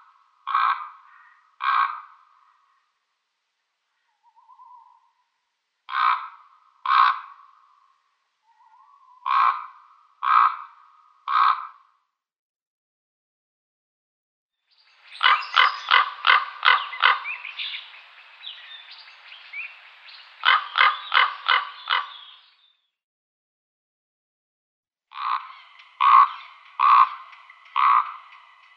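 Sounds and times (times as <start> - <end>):
common raven croaking: 0.4 - 2.9, 5.9 - 8.0, 8.6 - 12.0, 15.2 - 18.6, 19.6 - 22.4, 25.1 - 28.7
common raven rattling knocking notes and gurgling: 25.2 - 28.7.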